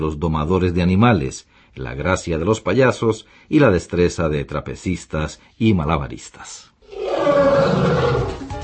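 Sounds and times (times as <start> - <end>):
speech: 0.0 - 8.2
lion roaring: 6.8 - 8.5.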